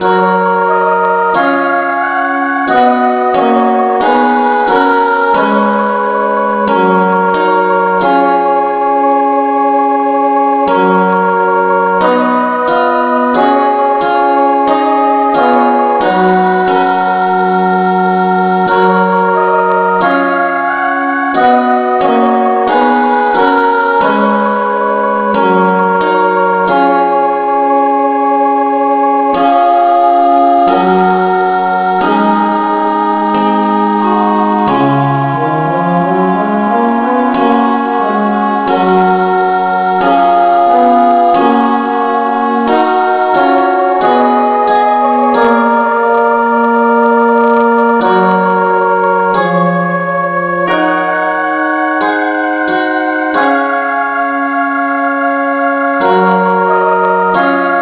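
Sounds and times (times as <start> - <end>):
instrumental music in G flat: 0.0 - 57.8.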